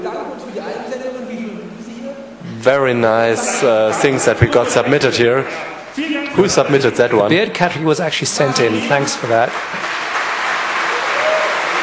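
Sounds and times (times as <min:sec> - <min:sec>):
speech: 0:02.6 - 0:10.0
audience applauding at a contest's category announcements: 0:08.6 - 0:11.8.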